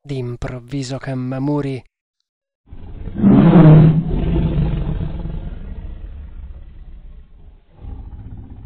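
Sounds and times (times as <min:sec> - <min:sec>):
speech: 0:00.1 - 0:01.9
tiger roaring and growling: 0:02.7 - 0:08.6.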